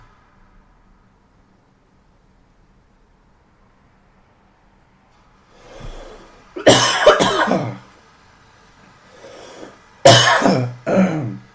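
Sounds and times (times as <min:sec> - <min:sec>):
person coughing harshly: 0:06.6 - 0:07.9, 0:09.6 - 0:11.5.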